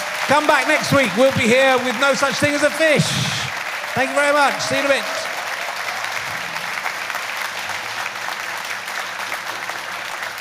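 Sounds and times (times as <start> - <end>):
sizable audience applauding a guest at the end of a show: 0.0 - 10.4
speech: 0.3 - 3.3, 4.0 - 5.3.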